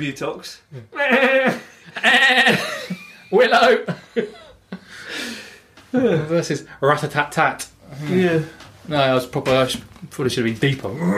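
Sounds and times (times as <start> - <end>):
speech: 0.0 - 2.7, 3.3 - 4.4, 5.9 - 11.1
laughter: 0.9 - 5.3
goat or sheep bleating: 2.0 - 2.6.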